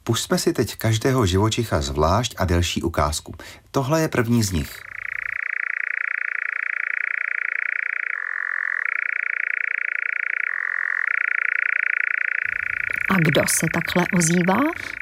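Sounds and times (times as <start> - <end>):
speech: 0.1 - 4.9, 13.2 - 15.0
European nightjar churring: 4.6 - 15.0.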